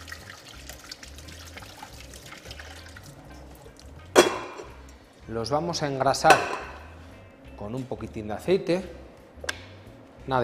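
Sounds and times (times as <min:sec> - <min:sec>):
cold tap water running over cooked pasta in a sink: 0:00.0 - 0:04.8
speech: 0:05.3 - 0:06.7, 0:07.6 - 0:09.0, 0:10.3 - 0:10.4.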